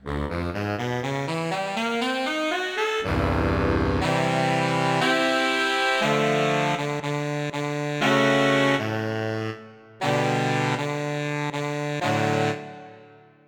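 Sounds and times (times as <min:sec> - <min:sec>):
alto saxophones playing hard with growl: 0:00.2 - 0:13.2.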